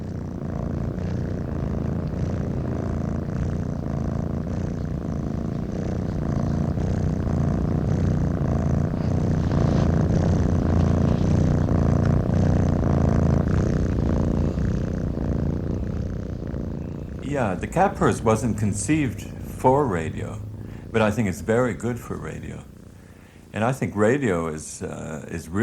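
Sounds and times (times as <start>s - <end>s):
two cats purring: 0.0s - 25.6s
speech: 17.4s - 22.7s, 23.6s - 25.6s.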